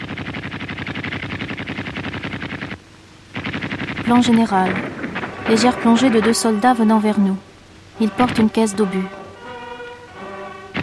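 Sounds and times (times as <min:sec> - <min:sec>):
automatic gunfire bursts: 0:00.0 - 0:06.8
speech: 0:04.1 - 0:04.9, 0:05.5 - 0:09.2.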